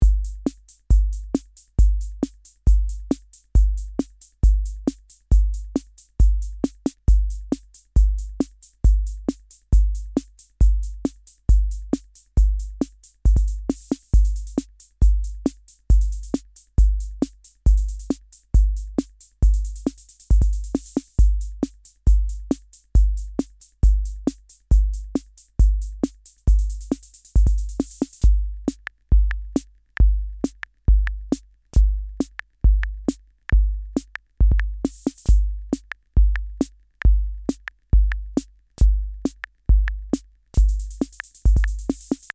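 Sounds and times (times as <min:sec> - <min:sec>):
rock drum beat: 0:00.0 - 0:42.3.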